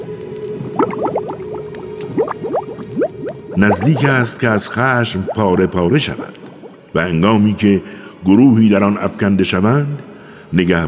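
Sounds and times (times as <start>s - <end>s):
thick liquid boiling and bubbling: 0.0s - 5.6s
speech: 3.6s - 6.4s, 7.0s - 10.8s.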